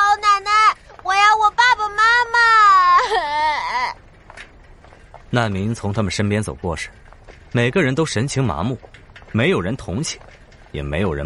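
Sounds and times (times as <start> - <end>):
young boy crying: 0.0 - 4.0
speech: 5.3 - 11.2.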